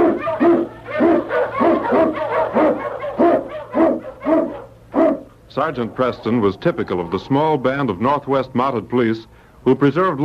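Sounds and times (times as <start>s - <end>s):
husky sled dog howling and yelping: 0.0s - 5.3s
speech: 5.6s - 10.2s.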